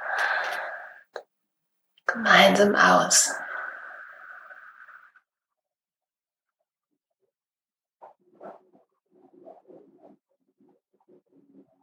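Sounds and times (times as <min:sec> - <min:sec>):
deep inhale during breathing exercise: 0:00.0 - 0:01.1, 0:03.4 - 0:05.0
short soft breath: 0:00.0 - 0:01.2, 0:03.3 - 0:05.1
speech: 0:02.1 - 0:03.4.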